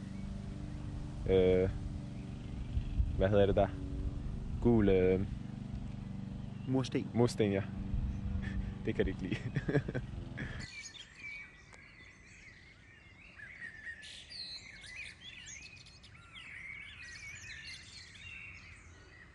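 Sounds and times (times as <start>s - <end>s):
birds singing at night before dawn: 0.0s - 19.3s
speech: 1.2s - 1.8s, 3.2s - 3.9s, 4.6s - 5.4s, 6.7s - 7.8s, 8.8s - 10.1s
laughter: 8.4s - 10.7s.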